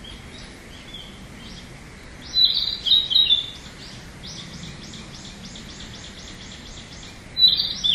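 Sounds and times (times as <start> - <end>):
light background noise: 0.0 - 7.9
Narcissus flycatcher song: 2.2 - 7.9.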